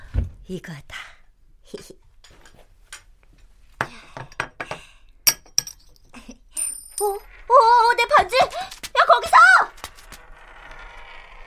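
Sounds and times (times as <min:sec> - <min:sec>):
speech: 0:00.5 - 0:01.1, 0:01.7 - 0:02.0, 0:07.0 - 0:08.6
small metal ring dropping and bouncing with ringing taps: 0:06.6 - 0:07.5.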